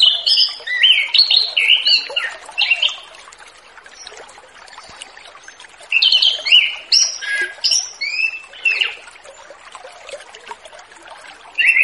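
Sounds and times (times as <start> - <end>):
Orange-headed thrush singing relaxed ngeplong-style song: 0.0 - 3.0, 6.0 - 9.0, 11.6 - 11.8.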